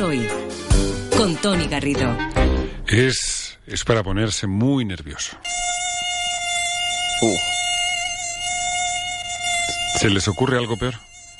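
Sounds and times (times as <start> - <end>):
speech: 0.1 - 5.6, 7.2 - 7.6, 10.0 - 11.1
mosquito whining: 5.4 - 11.3.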